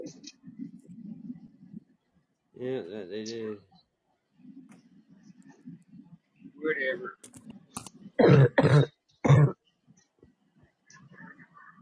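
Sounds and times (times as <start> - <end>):
soft indistinct murmuring: 0.0 - 8.3, 9.3 - 11.8
speech: 2.6 - 3.7, 6.6 - 7.4, 8.2 - 8.9
cough-like throat clearing: 8.2 - 9.6.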